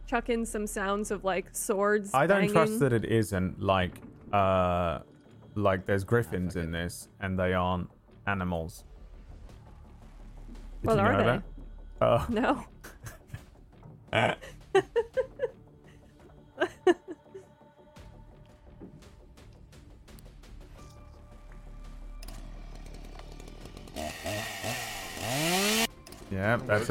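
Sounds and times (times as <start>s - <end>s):
speech: 0.1s - 8.9s, 10.8s - 13.2s, 14.1s - 15.1s, 26.3s - 26.9s
laughter: 2.3s - 3.0s, 12.8s - 13.4s, 14.2s - 17.5s, 26.7s - 26.9s
chainsaw buzzing: 22.8s - 26.2s.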